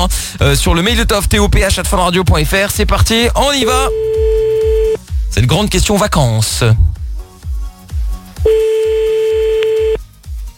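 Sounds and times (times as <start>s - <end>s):
speech: 0.0s - 4.4s, 5.3s - 6.9s
steady tone of a telephone call being dialed: 3.7s - 5.0s, 8.5s - 10.0s.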